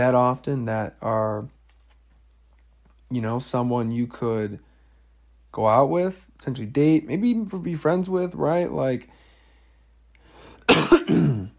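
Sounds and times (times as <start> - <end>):
speech: 0.0 - 1.6, 3.1 - 4.7, 5.5 - 9.3, 10.7 - 11.2
harsh cough: 10.6 - 11.5.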